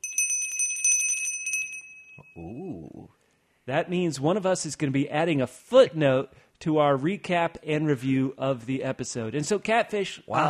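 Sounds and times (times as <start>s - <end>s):
bright bell ringing in a rapid trilling burst: 0.0s - 2.5s
speech: 2.4s - 10.4s.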